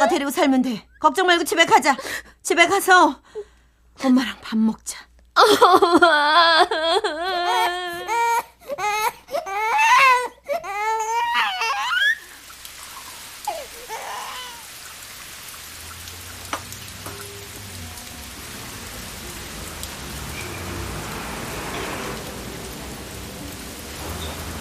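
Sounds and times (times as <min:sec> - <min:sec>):
speech: 0:00.0 - 0:08.0
daughter crying and sobbing: 0:05.4 - 0:12.0.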